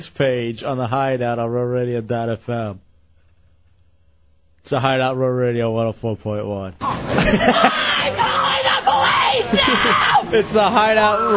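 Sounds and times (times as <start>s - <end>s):
speech: 0.0s - 2.8s, 4.6s - 8.4s, 9.5s - 11.3s
laughter: 6.8s - 11.3s
woman screaming and yelling: 7.5s - 10.4s.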